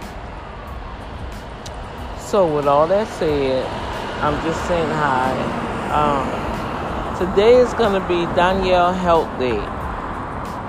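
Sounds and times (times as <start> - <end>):
road traffic at a bus stop: 0.0 - 10.6
speech: 2.3 - 6.5, 7.2 - 9.7.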